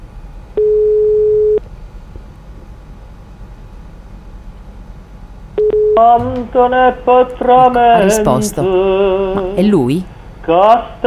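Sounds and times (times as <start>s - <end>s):
telephone ringback tone: 0.6s - 1.6s
speech: 6.0s - 11.0s.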